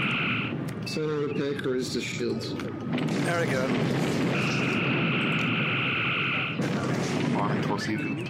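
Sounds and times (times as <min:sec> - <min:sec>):
phasers firing at a target in a starship bridge video game: 0:00.0 - 0:01.0, 0:04.4 - 0:06.6
speech: 0:00.9 - 0:05.1, 0:07.4 - 0:08.2.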